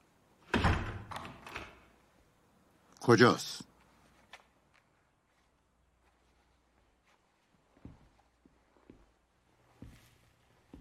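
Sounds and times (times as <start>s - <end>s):
door closing with a dull solid thud: 0.5s - 1.8s
speech: 3.1s - 3.7s.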